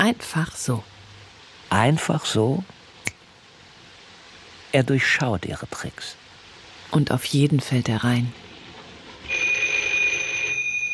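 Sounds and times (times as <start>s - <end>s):
speech: 0.0s - 0.9s, 1.7s - 2.8s, 4.7s - 6.2s, 6.9s - 8.4s
faint hiss: 0.0s - 10.9s
telephone ringing in an office: 9.2s - 10.9s.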